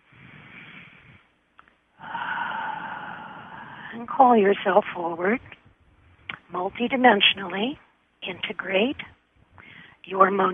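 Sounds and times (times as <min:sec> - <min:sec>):
deep breath drawn during a guided meditation seminar: 0:00.0 - 0:01.3, 0:02.0 - 0:04.1, 0:09.5 - 0:10.1
speech: 0:03.9 - 0:05.6, 0:06.5 - 0:09.2, 0:10.0 - 0:10.5.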